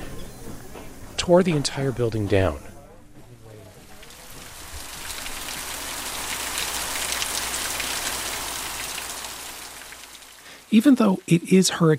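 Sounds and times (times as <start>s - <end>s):
speech: 1.3s - 2.7s, 10.7s - 11.9s
heavy rain pouring down on surfaces: 3.7s - 11.9s.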